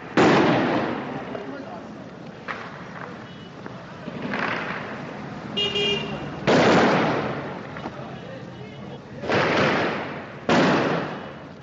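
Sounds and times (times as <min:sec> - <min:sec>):
murmur of street noise: 0:00.0 - 0:11.6
gunfire in a city street in Mosul amid looting: 0:06.4 - 0:07.4, 0:09.2 - 0:11.3.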